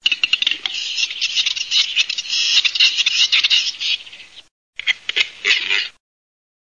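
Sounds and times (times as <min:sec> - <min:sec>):
western capercaillie calling: 0:00.2 - 0:06.0.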